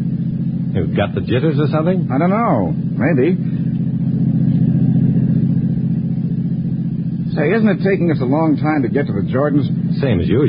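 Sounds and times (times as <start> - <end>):
car engine revving and accelerating: 0.0 - 10.4
speech: 0.8 - 3.6, 7.4 - 10.4.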